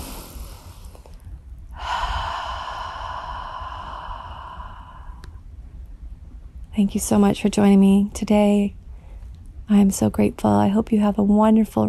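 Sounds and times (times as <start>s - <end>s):
deep breath with long soft airy exhale: 0.0s - 5.5s
speech: 6.8s - 8.8s, 9.7s - 11.8s.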